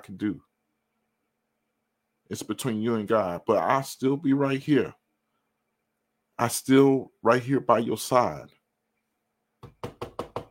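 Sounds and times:
speech: 0.0s - 0.5s, 2.3s - 5.0s, 6.4s - 8.6s
firm knocking on a wooden door: 9.6s - 10.4s.

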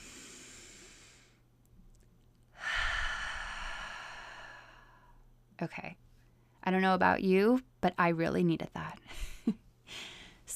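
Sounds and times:
deep breath with soft inhale and hissing exhale: 0.0s - 1.5s, 2.5s - 5.3s, 9.9s - 10.5s
speech: 5.6s - 6.0s, 6.6s - 10.5s.

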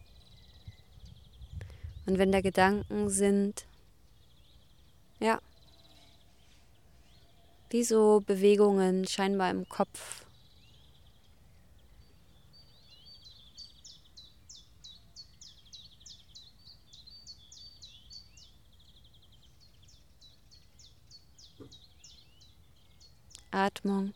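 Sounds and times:
birds chirping: 0.0s - 24.1s
speech: 2.1s - 3.7s, 5.2s - 5.5s, 7.7s - 10.3s, 23.6s - 24.1s.

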